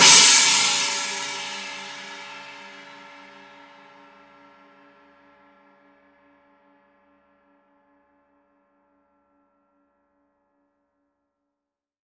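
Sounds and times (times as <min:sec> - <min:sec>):
china edge cymbal: 0:00.0 - 0:03.3.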